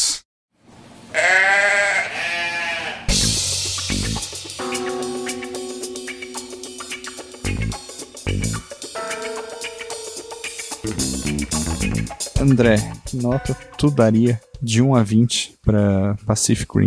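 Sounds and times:
goat bleating: 1.1 - 3.1
rhythmic music with heavy drums and sustained tones: 3.1 - 14.6
speech: 12.4 - 16.8.

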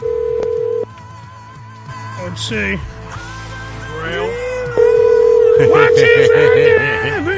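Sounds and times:
phone tone while dialing a phone number: 0.0 - 0.8, 4.8 - 7.3
speech: 2.3 - 3.2, 5.6 - 7.3.

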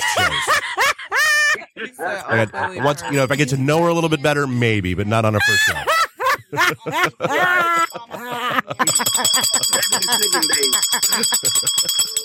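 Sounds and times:
laughter: 0.0 - 3.5, 5.4 - 12.2
speech: 2.0 - 5.9, 6.5 - 12.2
bell ringing in bright sustained tones: 8.8 - 12.2.

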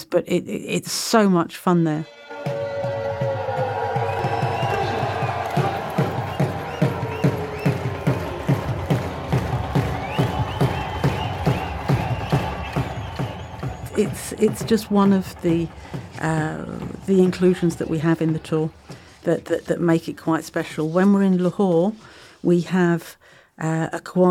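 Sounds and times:
speech: 0.1 - 2.2, 14.0 - 24.2
large crowd roaring and cheering at border flag ceremony: 2.3 - 18.4
clapping: 3.0 - 17.8.

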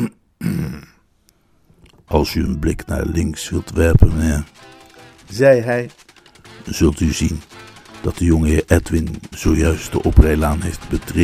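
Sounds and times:
person clearing throat: 0.0 - 1.0
speech: 2.1 - 6.0, 6.6 - 11.2.

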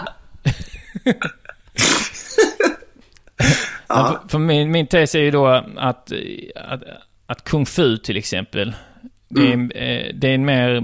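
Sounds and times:
speech: 1.0 - 1.4, 4.0 - 10.8
person sneezing: 1.8 - 2.6.

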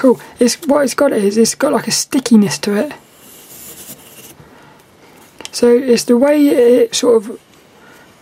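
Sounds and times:
speech: 0.0 - 3.0, 5.6 - 7.5
pencil scratching across paper: 3.0 - 4.4.

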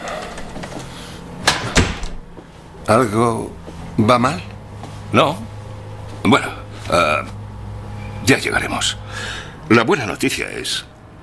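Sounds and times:
office door pushed shut: 0.0 - 2.3
speech: 2.9 - 4.5, 5.1 - 5.5, 6.2 - 7.4, 8.3 - 10.9.

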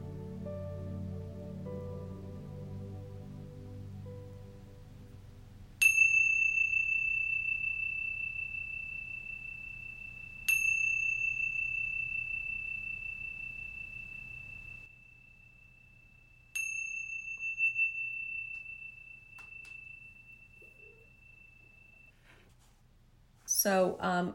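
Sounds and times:
soft low ambient hum: 0.0 - 24.3
bright meditation chime ringing: 5.8 - 22.2
speech: 23.6 - 24.3.

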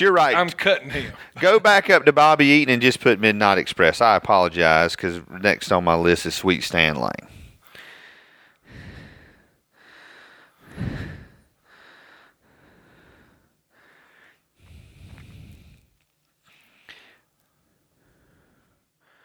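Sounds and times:
speech: 0.0 - 7.4
heavy rasping breathing with snorting edge: 0.9 - 1.5, 7.2 - 19.2.

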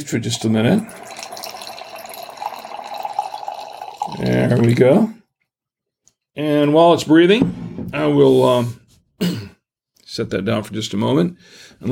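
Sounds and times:
speech: 0.0 - 1.2, 4.2 - 5.2, 6.4 - 9.4, 10.2 - 11.9
wine pouring in a steady stream into a crystal carafe: 0.0 - 5.1.

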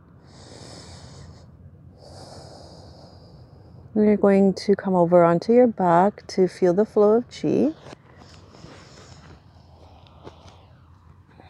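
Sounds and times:
slow breathing during a yin yang yoga session: 0.1 - 4.0, 8.0 - 11.4
speech: 4.0 - 8.0.

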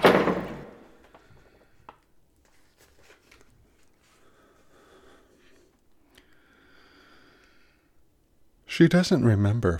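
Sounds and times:
bedroom door slamming shut with a heavy booming thud: 0.0 - 0.9
speech: 8.8 - 9.7.

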